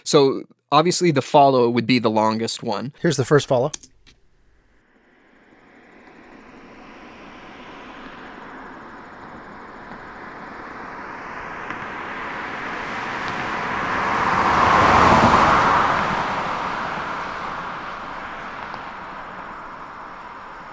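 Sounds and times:
speech: 0:00.0 - 0:03.9
car passing by: 0:04.8 - 0:20.7.

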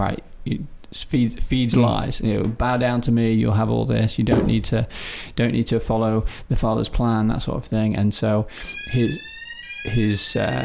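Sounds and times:
speech: 0:00.0 - 0:10.6
fire alarm tone: 0:08.6 - 0:10.6.

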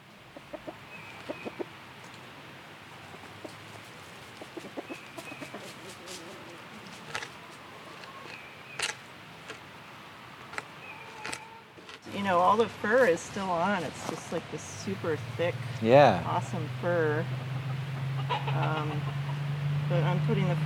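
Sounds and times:
chickens clucking while eating scraps: 0:00.2 - 0:08.9, 0:12.5 - 0:20.6
pecking and scraping: 0:03.2 - 0:09.7, 0:10.4 - 0:14.4
speech: 0:12.6 - 0:17.5, 0:18.6 - 0:19.2, 0:19.9 - 0:20.6.

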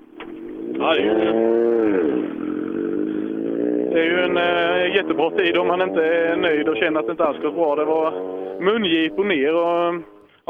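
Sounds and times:
racing motorcycle accelerating on a gravel track: 0:00.0 - 0:10.4
speech: 0:00.8 - 0:01.7, 0:03.9 - 0:10.4.

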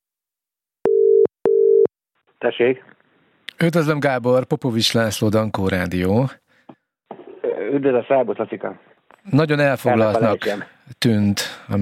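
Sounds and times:
telephone ringback tone while a call connects: 0:00.9 - 0:01.9
speech: 0:02.4 - 0:03.0, 0:03.6 - 0:06.4, 0:07.7 - 0:11.8.

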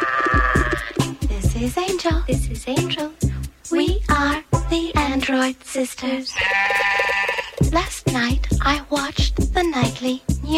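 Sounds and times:
sheep bleating: 0:00.0 - 0:01.0, 0:06.3 - 0:07.6
speech: 0:01.6 - 0:10.5.

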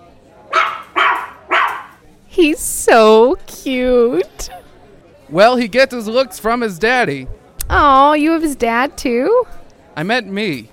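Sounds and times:
dog barking: 0:00.5 - 0:02.0
speech: 0:02.4 - 0:04.6, 0:05.3 - 0:10.7.

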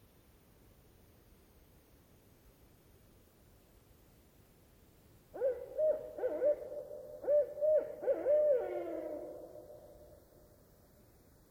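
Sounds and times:
Barred owl hooting from a tree in a rain forest river valley: 0:05.4 - 0:10.2.

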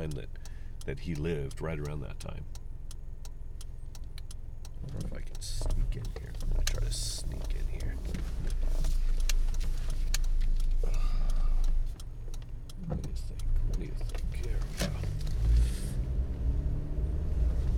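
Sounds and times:
speech: 0:00.0 - 0:02.6, 0:04.8 - 0:09.1, 0:12.8 - 0:15.1
clicks inside a moving car: 0:00.0 - 0:16.0
low engine and road rumble from inside a moving car: 0:00.0 - 0:17.7.

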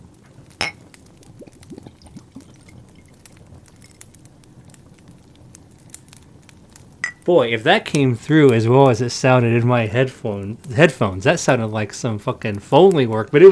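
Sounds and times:
glass clink: 0:00.6 - 0:00.9, 0:07.0 - 0:07.3
purple-colored drink poured into a glass with fine fizzing crackles: 0:00.6 - 0:05.2
speech: 0:07.2 - 0:13.5.

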